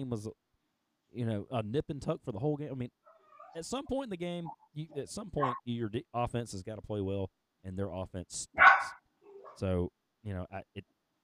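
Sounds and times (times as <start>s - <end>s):
speech: 0.0s - 0.5s, 1.1s - 9.0s, 9.6s - 11.0s
dog barking excitedly: 5.4s - 5.6s, 8.6s - 9.6s.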